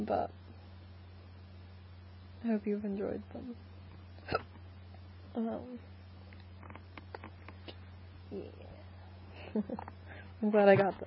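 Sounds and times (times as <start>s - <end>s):
speech: 0.0s - 0.4s, 2.4s - 3.7s, 4.3s - 4.5s, 5.3s - 5.9s, 8.3s - 8.8s, 9.5s - 11.0s
low steady hum: 0.0s - 11.0s
hiccups: 4.2s - 4.6s.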